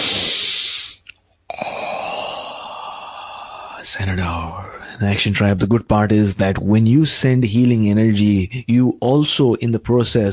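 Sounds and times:
deep breathy inhalation during a guided healing-energy breathing exercise: 0:00.0 - 0:04.0
speech: 0:03.8 - 0:10.3.

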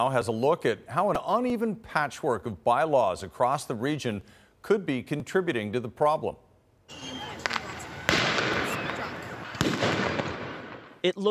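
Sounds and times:
speech: 0:00.0 - 0:07.1, 0:11.0 - 0:11.2
noisy chaotic outdoor crowd din: 0:06.9 - 0:10.1
fireworks exploding: 0:06.9 - 0:11.0
crackling pops: 0:07.4 - 0:10.9.

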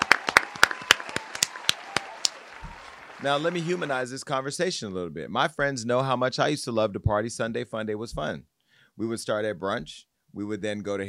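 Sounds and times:
round of applause: 0:00.0 - 0:04.2
speech: 0:03.2 - 0:11.0.

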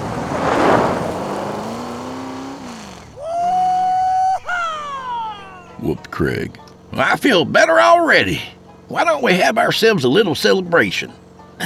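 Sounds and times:
pickup truck speeding off through gear changes: 0:00.0 - 0:04.1
laughter: 0:03.2 - 0:06.2
speech: 0:05.8 - 0:11.6.

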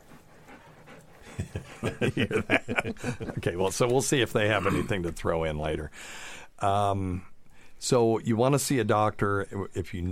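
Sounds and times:
dogs panting: 0:00.0 - 0:04.0
laughter: 0:01.2 - 0:05.0
speech: 0:01.8 - 0:10.1.

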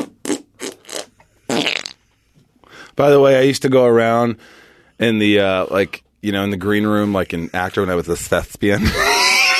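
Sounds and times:
man making armpit farts by hand: 0:00.0 - 0:02.0
speech: 0:03.0 - 0:09.4.

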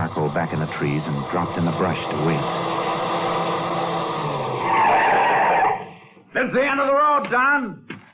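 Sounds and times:
speech: 0:00.0 - 0:02.8, 0:06.4 - 0:07.9
tires skidding and screeching over rough ground: 0:00.0 - 0:06.1
car engine whining on a rough road at night: 0:00.0 - 0:06.3.

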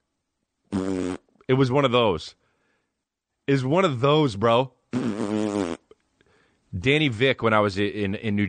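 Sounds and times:
fart: 0:00.7 - 0:01.3, 0:04.9 - 0:06.0
speech: 0:01.5 - 0:02.4, 0:03.5 - 0:05.2, 0:06.8 - 0:08.4.

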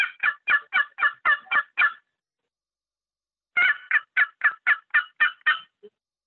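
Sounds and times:
turkey box call cutting and small yelps: 0:00.0 - 0:02.1, 0:03.6 - 0:05.8.

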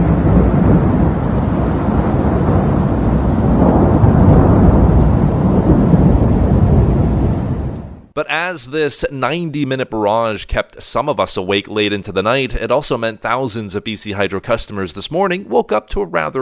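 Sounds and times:
rolling thunder during a heavy thunderstorm: 0:00.0 - 0:08.2
speech: 0:08.2 - 0:16.4.

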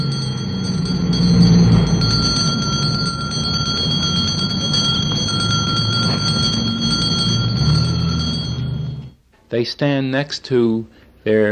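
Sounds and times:
handbell rung by a street Santa Claus: 0:00.0 - 0:09.2
low rumble of street noise and traffic: 0:00.0 - 0:09.2
speech: 0:09.5 - 0:11.5.

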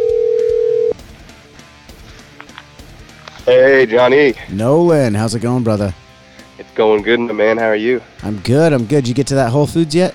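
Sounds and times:
electronic phone tone of a telephone call being placed: 0:00.0 - 0:01.0
speech: 0:03.5 - 0:06.0, 0:06.8 - 0:10.1.

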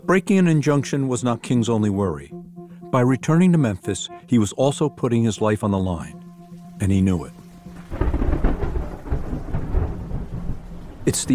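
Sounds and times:
speech: 0:00.0 - 0:06.2, 0:06.8 - 0:07.4, 0:11.1 - 0:11.3
rain hissing during a thunderstorm: 0:06.4 - 0:11.3
deep rolling thunder during a thunderstorm: 0:07.7 - 0:11.3.

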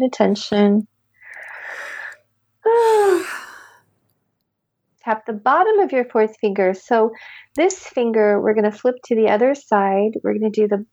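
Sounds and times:
speech: 0:00.0 - 0:00.9, 0:05.0 - 0:10.9
person breathing in deeply during a tapping exercise: 0:01.2 - 0:02.2, 0:02.8 - 0:03.8
person letting out a voiced sigh: 0:02.7 - 0:03.8.

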